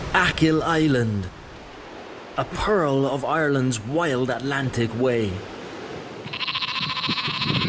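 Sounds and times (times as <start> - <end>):
speech: 0.1 - 1.4, 2.4 - 5.5
sheep bleating on an island farm on Achill Island off Ireland's west coast: 6.2 - 7.6.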